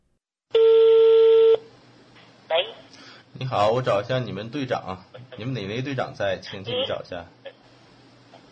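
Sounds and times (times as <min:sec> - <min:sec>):
electronic phone tone: 0:00.5 - 0:01.7
speech: 0:03.4 - 0:07.4.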